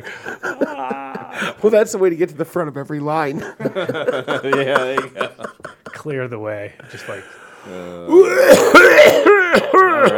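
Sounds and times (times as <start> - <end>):
laughter: 0.0 - 1.6, 3.3 - 6.2
speech: 1.6 - 10.1
man clearing throat: 8.1 - 10.1
man coughing with rasping hacks: 8.1 - 10.1.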